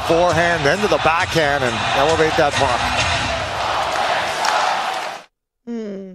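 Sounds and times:
speech: 0:00.1 - 0:03.0
hockey arena crowd chanting: 0:01.7 - 0:05.2.

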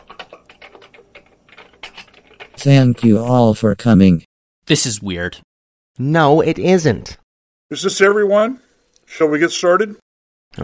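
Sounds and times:
typing on a text-to-speech keyboard: 0:00.0 - 0:02.6
speech: 0:02.6 - 0:10.6.

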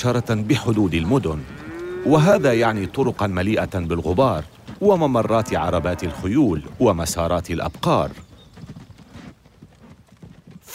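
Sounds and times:
speech: 0:00.0 - 0:08.3
horse hooves clip-clopping on a hard street: 0:00.0 - 0:10.7.

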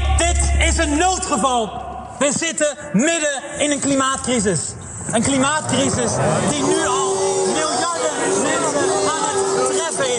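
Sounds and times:
speech: 0:00.8 - 0:07.0
concert audience jeering and booing a climate activist: 0:05.8 - 0:10.1
people shouting in concert audience: 0:06.3 - 0:10.1.

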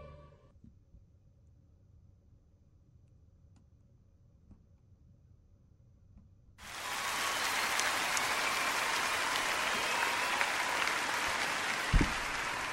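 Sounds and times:
large audience applauding at a live singer's performance: 0:06.6 - 0:12.7.

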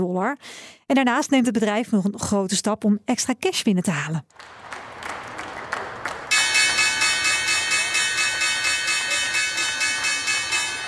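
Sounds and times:
speech: 0:00.0 - 0:04.8
brief claps: 0:04.3 - 0:10.8
loud bright stock exchange opening bell ringing: 0:06.3 - 0:10.8.

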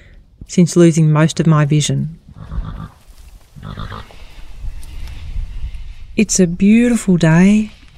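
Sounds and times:
steady outdoor hiss: 0:00.0 - 0:07.9
speech: 0:00.5 - 0:02.2, 0:06.2 - 0:07.8
pony whinnying in a paddock: 0:02.3 - 0:03.0, 0:03.6 - 0:04.3.

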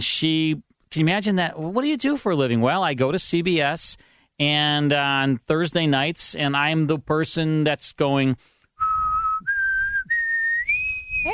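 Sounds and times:
speech: 0:00.0 - 0:09.2
person whistling: 0:08.8 - 0:11.3.

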